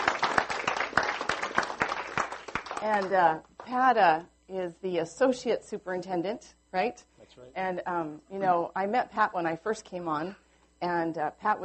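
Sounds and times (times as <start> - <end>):
audience applause welcoming a guest: 0.0 - 2.8
speech: 2.8 - 11.6.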